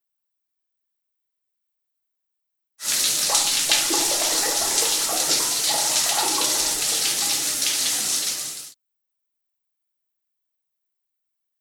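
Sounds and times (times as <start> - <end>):
shower running with hissing water spray: 2.8 - 8.8.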